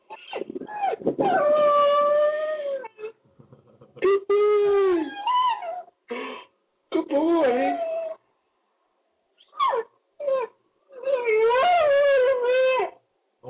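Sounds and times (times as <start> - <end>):
dog howling and whimpering: 0.0 - 3.2, 3.9 - 6.0, 7.0 - 8.2, 9.4 - 13.0.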